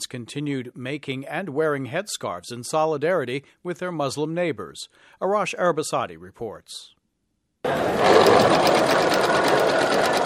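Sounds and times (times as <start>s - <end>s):
speech: 0.1s - 7.0s, 7.6s - 10.2s
sewing machine stitching headscarves at a community center: 7.7s - 10.2s.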